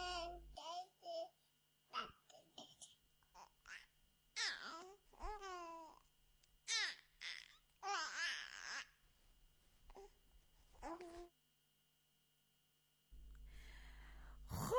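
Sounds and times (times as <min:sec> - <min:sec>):
newborn baby babbling and cooing: 0:00.0 - 0:09.0, 0:10.8 - 0:11.3.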